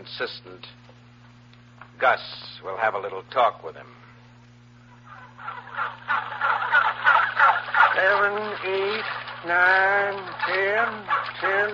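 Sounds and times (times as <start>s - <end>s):
speech: 0.0s - 0.9s, 2.0s - 4.0s, 5.8s - 6.4s, 8.0s - 11.7s
steady low hum: 0.0s - 11.7s
flock of turkeys gobbling: 4.8s - 11.7s.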